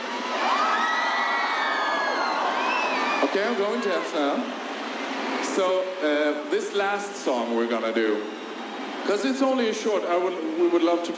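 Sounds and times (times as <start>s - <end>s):
concert audience screaming and cheering for a band: 0.0s - 10.8s
speech: 3.2s - 4.6s, 5.6s - 8.4s, 9.0s - 11.1s.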